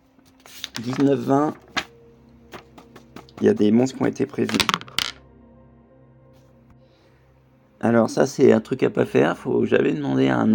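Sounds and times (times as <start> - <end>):
speech: 0.8 - 1.6, 3.4 - 4.8, 7.8 - 10.5
d20 die clattering across a hard surface: 4.5 - 5.2.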